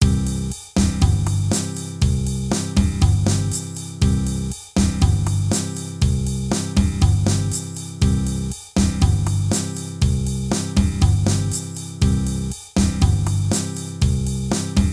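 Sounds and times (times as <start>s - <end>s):
bossa nova percussion: 0.0s - 14.9s.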